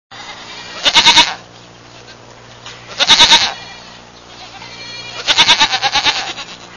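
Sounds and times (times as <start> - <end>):
goat bleating: 0.1 - 1.5, 2.7 - 6.7.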